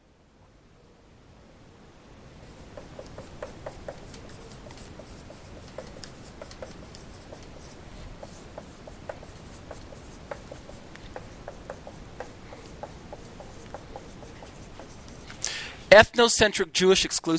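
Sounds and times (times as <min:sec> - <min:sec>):
chalk or marker scratching across a board: 0:02.4 - 0:15.4
speech: 0:15.9 - 0:17.3.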